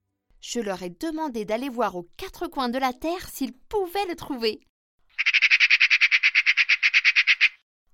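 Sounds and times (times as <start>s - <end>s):
speech: 0.4s - 4.7s
magpie chattering: 5.2s - 7.6s.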